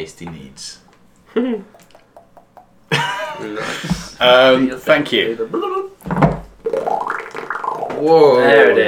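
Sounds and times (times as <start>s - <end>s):
speech: 0.0s - 0.8s, 3.4s - 6.3s, 8.0s - 8.8s
laughter: 2.9s - 4.2s
bubbling water transition sound effect: 6.6s - 8.0s.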